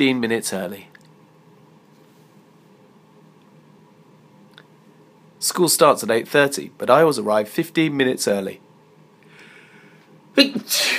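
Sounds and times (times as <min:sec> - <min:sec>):
speech: 0:00.0 - 0:01.0, 0:05.4 - 0:08.6, 0:10.4 - 0:10.9
person sneezing loudly: 0:10.4 - 0:10.9.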